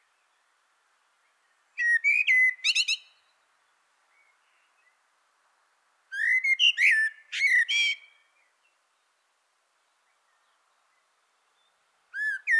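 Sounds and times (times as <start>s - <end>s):
common blackbird Turdus merula singing: 1.8s - 3.2s, 6.1s - 8.3s, 11.6s - 12.5s.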